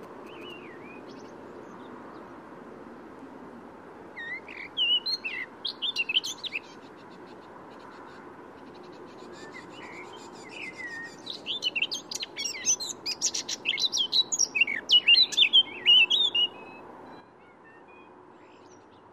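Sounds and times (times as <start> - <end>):
Eurasian blackcap Sylvia atricapilla scratchy twittering warbled song: 0.2 - 1.3, 4.2 - 6.9, 9.2 - 19.0.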